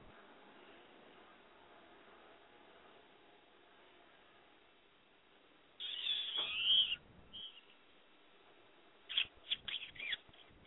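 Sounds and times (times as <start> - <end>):
bird screeching: 5.8 - 7.7, 9.1 - 10.5.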